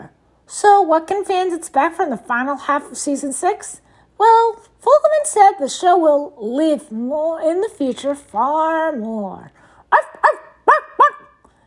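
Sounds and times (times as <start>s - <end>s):
speech: 0.5s - 10.4s
dog barking: 9.9s - 11.4s.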